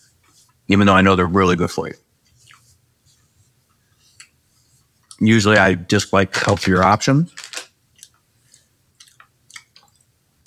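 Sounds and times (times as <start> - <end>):
speech: 0.7 - 2.0, 5.2 - 7.4
crunchy chewing of almonds: 7.9 - 10.4.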